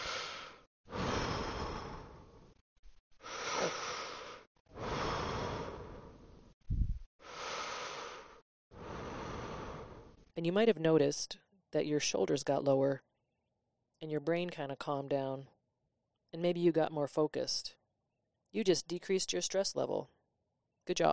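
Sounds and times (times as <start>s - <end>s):
slow deep breathing: 0.0s - 2.6s, 3.2s - 6.6s, 7.2s - 10.3s
brief sniff: 3.3s - 5.9s, 7.3s - 10.1s
speech: 10.4s - 13.1s, 14.0s - 15.5s, 16.3s - 17.8s, 18.5s - 20.2s, 20.8s - 21.1s.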